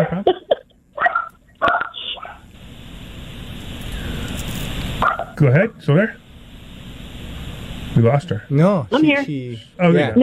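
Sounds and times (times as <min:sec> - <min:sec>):
steady hiss of noise: 0:00.0 - 0:10.2
dog barking: 0:01.0 - 0:02.5, 0:05.0 - 0:05.4
speech: 0:05.4 - 0:06.2, 0:08.0 - 0:10.2.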